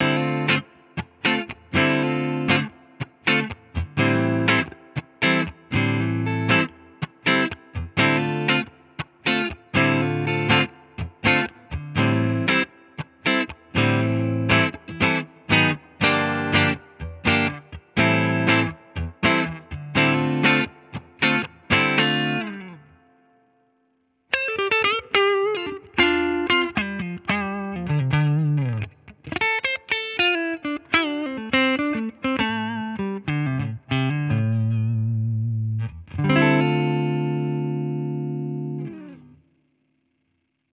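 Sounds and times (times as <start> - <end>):
clean electric guitar tone from Fender Tone Master Pro: 0.0 - 39.6.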